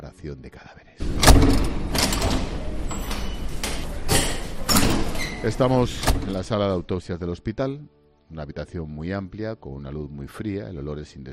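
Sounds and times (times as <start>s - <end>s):
speech: 0.0s - 1.8s, 5.4s - 11.3s
low noise: 0.6s - 7.2s
door unlocked with a key and pushed open with metallic clicks and rattles: 1.0s - 6.7s.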